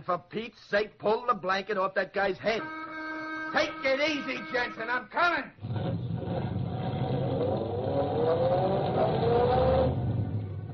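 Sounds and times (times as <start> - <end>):
speech: 0.0 - 2.9, 3.5 - 6.0
car accelerating as driver steps on the gas: 5.6 - 10.7.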